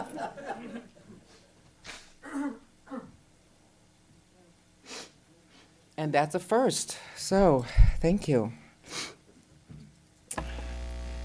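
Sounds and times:
laughter: 0.0 - 1.2
person blowing their nose into a tissue: 4.8 - 5.2
speech: 6.0 - 9.1.

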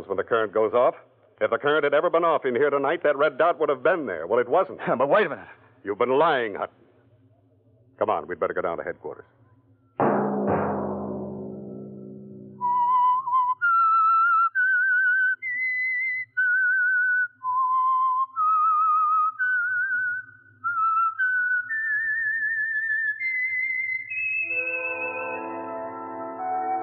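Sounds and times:
speech: 0.0 - 6.8, 8.0 - 9.4
low musical hit: 10.0 - 12.9
musical accompaniment: 10.0 - 13.3, 24.4 - 26.8
solo whistled slow melody: 12.4 - 26.8.

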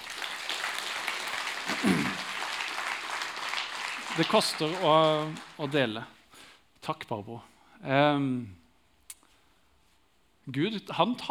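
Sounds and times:
audience applause: 0.0 - 6.0
speech: 4.2 - 6.2, 6.9 - 8.6, 10.5 - 11.2.

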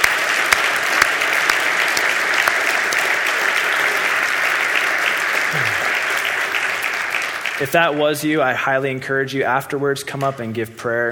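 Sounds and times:
large crowd applauding: 0.0 - 8.4
speech: 7.6 - 11.1.

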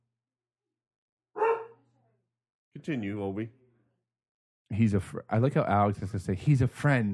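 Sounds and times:
dog barking as a delivery person approaches: 1.4 - 1.8
speech: 2.8 - 3.6, 4.7 - 7.1.

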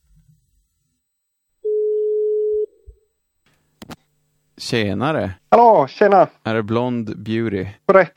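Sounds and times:
telephone ringback tone: 1.6 - 2.7
speech: 4.6 - 8.1.

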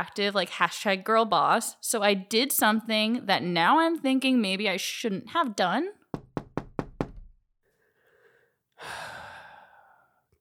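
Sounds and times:
speech: 0.0 - 6.0
sharp knocks on a door: 6.1 - 7.4.

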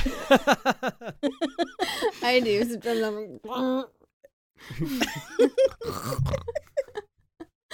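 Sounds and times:
bursts of laughter: 0.0 - 2.9, 4.7 - 7.1
speech: 0.3 - 0.8, 2.4 - 4.0, 4.6 - 6.7
short throaty burp with a squealing edge: 5.8 - 6.6.

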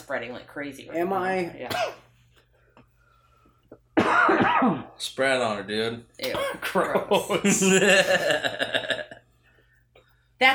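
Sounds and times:
speech: 0.1 - 2.1, 4.2 - 9.2
loud harsh raspy cough: 1.7 - 2.1, 4.0 - 5.0, 6.2 - 6.8.

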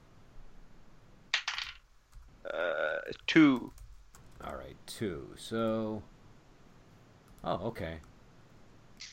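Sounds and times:
small ten-sided die clattering on a hard table: 1.4 - 1.8
speech: 3.1 - 3.8, 4.8 - 6.1, 7.4 - 8.1.

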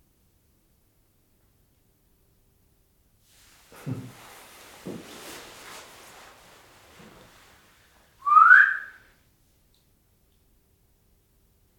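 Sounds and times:
person whistling a rising whistle: 8.2 - 9.0.

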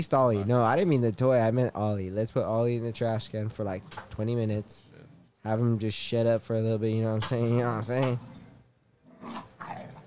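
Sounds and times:
speech: 0.0 - 8.3
small dog growling: 7.3 - 10.0.

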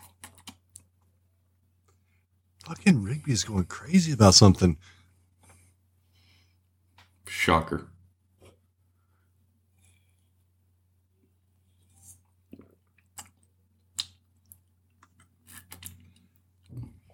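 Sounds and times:
low steady hum: 0.0 - 17.1
speech: 2.7 - 5.0, 7.4 - 7.9
person chewing with wet mouth noises: 12.1 - 16.8.

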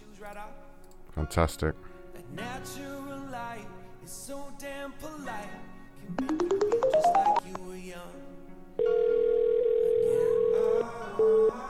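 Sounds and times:
speech: 0.2 - 9.0
phone ringing with incoming call: 6.2 - 7.6, 8.8 - 11.6.

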